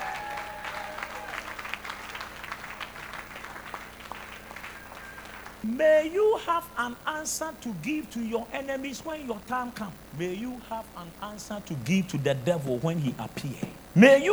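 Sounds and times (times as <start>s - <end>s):
large audience clapping in a church: 0.0s - 5.8s
speech: 5.6s - 14.3s.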